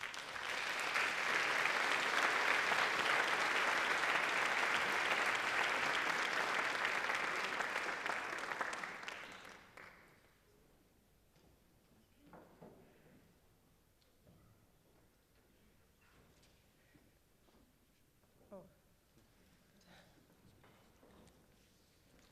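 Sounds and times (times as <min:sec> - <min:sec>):
large audience applause: 0:00.0 - 0:10.1.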